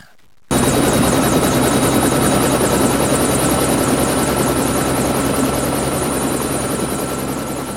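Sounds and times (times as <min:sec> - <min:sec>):
helicopter flying: 0:00.5 - 0:07.7.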